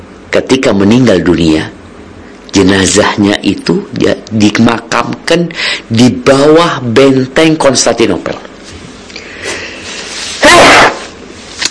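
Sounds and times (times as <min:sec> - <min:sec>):
speech: 0:00.4 - 0:01.8, 0:02.6 - 0:08.5
loud sharp breathy sneeze: 0:10.4 - 0:11.2.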